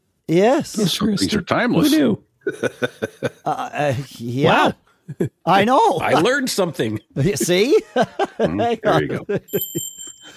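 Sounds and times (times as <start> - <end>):
speech: 0.3 - 10.3
two bells ringing at the same time: 9.5 - 10.3.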